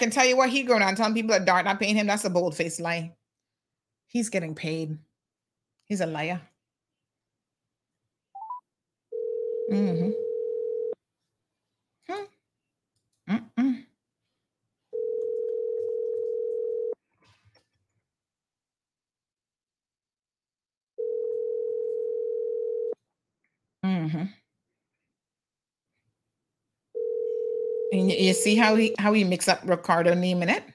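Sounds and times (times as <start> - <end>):
speech: 0.0 - 3.2, 4.1 - 5.1, 5.9 - 6.5, 9.7 - 10.3, 24.0 - 24.4, 27.9 - 30.7
telephone ringback tone while placing a call: 8.4 - 11.0, 15.0 - 17.0, 21.0 - 23.0, 27.0 - 28.4.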